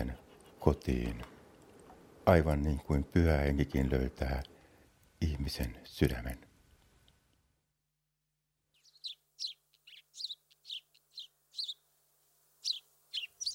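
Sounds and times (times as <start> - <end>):
speech: 0.6 - 1.3, 2.3 - 4.5, 5.2 - 6.5
sparrow chirping: 8.7 - 11.9, 12.6 - 13.5.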